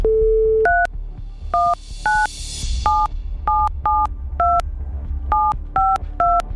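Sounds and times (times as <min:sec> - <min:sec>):
touch-tone beeps of a phone number being dialed: 0:00.1 - 0:00.9, 0:01.6 - 0:02.3, 0:02.9 - 0:04.6, 0:05.3 - 0:06.4.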